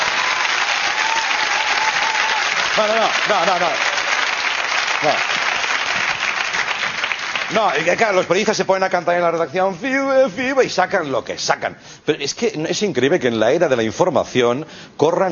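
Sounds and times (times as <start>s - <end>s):
audience applause: 0.0s - 8.2s
speech: 2.8s - 3.9s, 5.0s - 5.4s, 7.5s - 15.3s.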